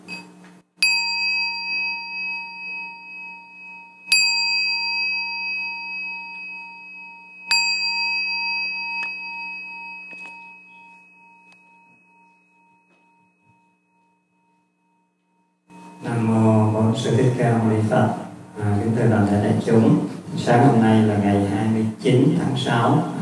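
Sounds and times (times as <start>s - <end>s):
meditation bell struck at a meditation retreat in Orange County California: 0.0s - 18.2s
speech: 17.0s - 23.2s.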